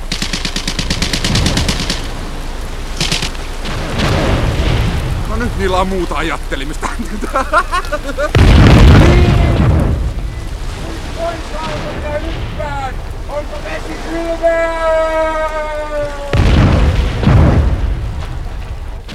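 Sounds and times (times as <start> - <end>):
gasoline barrels exploding on a ship's deck: 0.0 - 5.8, 8.3 - 14.1, 16.2 - 19.1
speech: 5.6 - 9.6, 11.2 - 16.8
laughter: 6.7 - 8.4.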